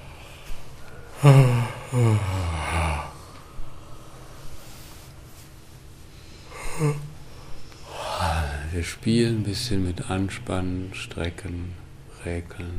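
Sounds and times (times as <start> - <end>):
quiet breathing: 0.0 - 8.9
shorter softer groan: 0.9 - 3.5, 6.5 - 8.7
person groaning yawn on the exhale as a breathing exercise: 1.1 - 3.3, 6.5 - 7.2
speech: 1.2 - 2.6, 8.8 - 12.7.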